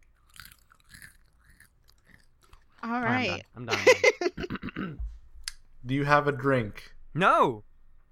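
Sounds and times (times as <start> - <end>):
crunchy bites: 0.0 - 2.8
wet chewing: 0.0 - 2.9
speech: 2.8 - 5.1, 5.8 - 7.7
laughter: 3.7 - 4.6.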